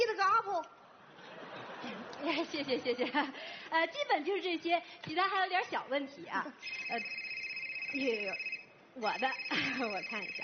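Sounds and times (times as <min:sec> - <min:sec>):
speech: 0:02.2 - 0:07.3, 0:07.9 - 0:10.4
high electronic telephone ringtone: 0:06.6 - 0:10.4.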